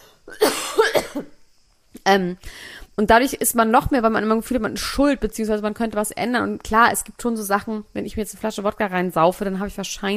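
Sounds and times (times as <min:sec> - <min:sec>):
person coughing: 0:00.3 - 0:01.3
speech: 0:02.1 - 0:10.1.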